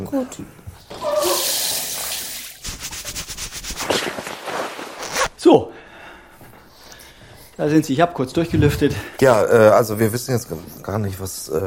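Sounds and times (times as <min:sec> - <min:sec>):
speech: 0:00.0 - 0:01.0, 0:05.4 - 0:05.8, 0:07.6 - 0:11.6
shower water running: 0:01.2 - 0:02.6.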